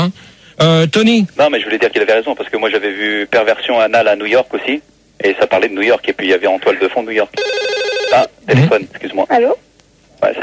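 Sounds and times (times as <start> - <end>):
speech: 0.0 - 10.4
telephone ringing with a short loud electronic trill: 7.3 - 8.3.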